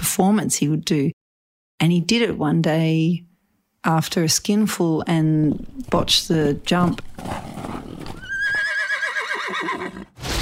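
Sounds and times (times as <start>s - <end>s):
speech: 0.2s - 1.2s, 1.8s - 7.6s
horse whinnying: 7.0s - 10.2s.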